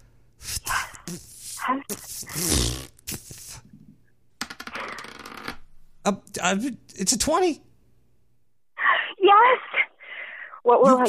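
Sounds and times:
blowing on a die: 0:00.4 - 0:03.6
speech: 0:01.1 - 0:02.9, 0:06.1 - 0:07.7, 0:10.6 - 0:11.0.

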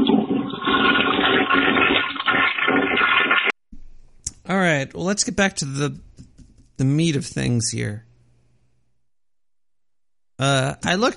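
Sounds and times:
toilet flushing: 0:00.0 - 0:03.6
speech: 0:04.8 - 0:06.2, 0:06.8 - 0:08.1, 0:10.4 - 0:11.1.

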